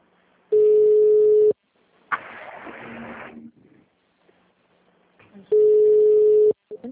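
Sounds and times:
ringback tone of an outgoing call joining a group call: 0.5 - 1.6, 5.5 - 6.6.

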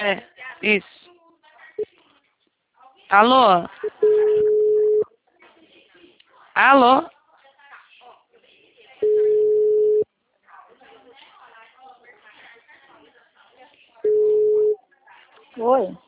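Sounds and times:
speech: 0.0 - 1.0, 3.1 - 4.2, 6.6 - 7.2, 15.6 - 16.0
busy tone on a telephone line after a dropped call: 4.0 - 5.0, 9.0 - 10.0, 14.0 - 14.8.

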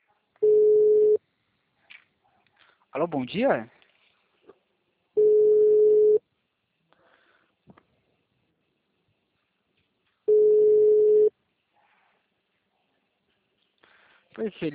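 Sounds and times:
ringback tone of an outgoing phone call: 0.4 - 1.2, 5.2 - 6.2, 10.3 - 11.3
speech: 2.9 - 3.8, 14.4 - 14.7.

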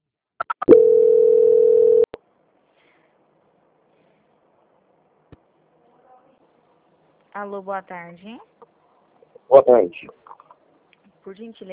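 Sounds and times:
telephone line beeps as a call is transferred: 0.6 - 2.1
speech: 7.4 - 8.6, 9.5 - 10.2, 11.2 - 11.7.

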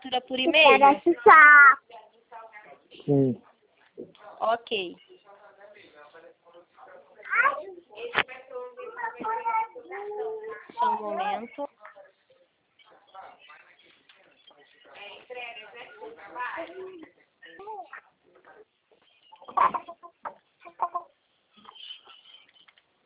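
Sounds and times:
speech: 0.1 - 1.8, 3.0 - 5.1, 9.2 - 11.9, 15.0 - 18.7, 19.5 - 20.4
human voices: 3.1 - 3.4
chicken clucking: 19.0 - 22.8
chicken squawk: 19.3 - 22.2.

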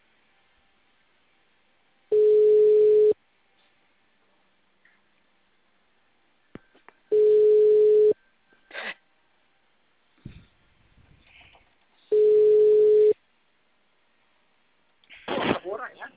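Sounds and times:
ringback tones of an outgoing phone call: 2.1 - 3.2, 7.1 - 8.2, 12.1 - 13.2.

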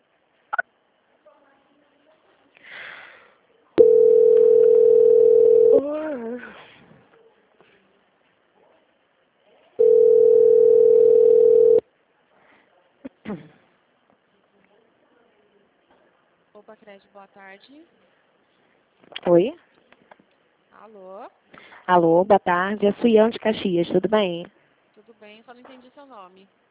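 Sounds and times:
telephone tones during a call transfer: 3.8 - 5.9, 9.8 - 11.8
speech: 17.0 - 18.1, 19.2 - 19.6, 20.9 - 24.6, 25.6 - 26.6.

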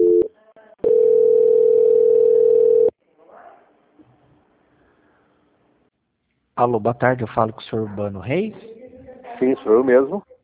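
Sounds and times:
telephone tone while a call is transferred to an audit department: 0.0 - 2.9
speech: 6.6 - 8.7, 9.4 - 10.3.

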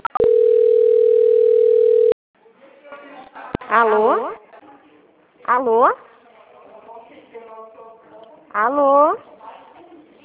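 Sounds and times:
telephone beeps during a call transfer: 0.1 - 2.2
speech: 3.7 - 4.4, 5.5 - 6.1, 8.5 - 9.3.

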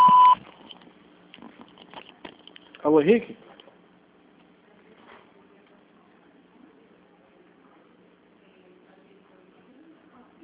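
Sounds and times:
voicemail beep: 0.0 - 0.4
faint low noise: 0.0 - 10.4
speech: 2.8 - 3.4.

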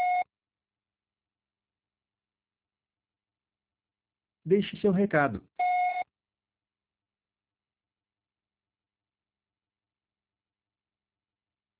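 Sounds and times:
voicemail tone before leaving a message: 0.0 - 0.2, 5.6 - 6.0
speech: 4.5 - 5.6.

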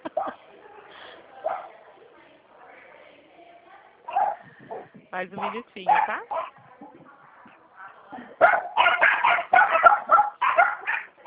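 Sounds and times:
dogs barking: 4.1 - 7.1, 8.4 - 11.2
speech: 5.2 - 6.4.

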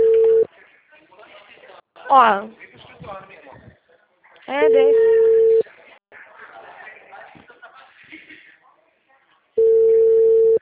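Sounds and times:
telephone ringing tone of an outgoing call: 0.0 - 0.5, 4.7 - 5.6, 9.6 - 10.6
speech: 2.1 - 3.7, 4.5 - 5.2.

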